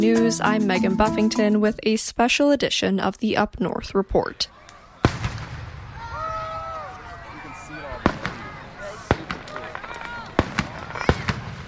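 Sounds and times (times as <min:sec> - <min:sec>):
speech: 0:00.0 - 0:04.6
crowd voices: 0:04.3 - 0:11.6
fireworks exploding: 0:05.0 - 0:11.6.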